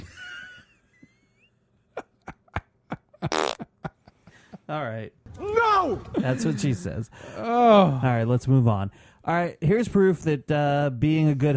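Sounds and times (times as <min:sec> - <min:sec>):
fart noises: 0:03.2 - 0:03.8
speech: 0:04.7 - 0:11.5
laughter: 0:06.0 - 0:07.3.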